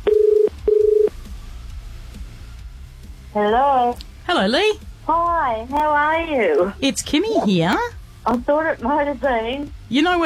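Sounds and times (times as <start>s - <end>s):
low electronic telephone dialing tones: 0.0s - 1.1s
speech: 3.4s - 10.2s.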